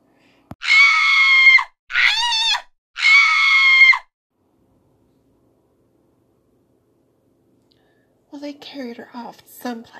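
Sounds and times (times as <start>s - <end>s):
animal screaming while hauled in a net from a tank: 0.6s - 4.1s
speech: 8.5s - 9.9s.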